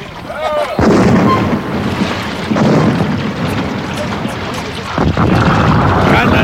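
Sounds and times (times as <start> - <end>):
ship's cannons firing broadside: 0.8 - 6.4.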